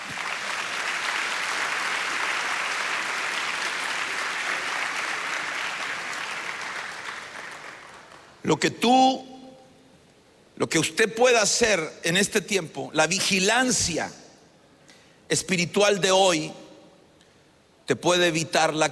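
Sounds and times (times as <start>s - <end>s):
audience clapping: 0.0s - 8.4s
speech: 8.4s - 9.3s, 10.6s - 14.2s, 15.3s - 16.6s, 17.9s - 18.8s
man speaking loudly: 8.4s - 9.6s, 10.6s - 14.2s, 15.3s - 16.8s, 17.9s - 18.8s.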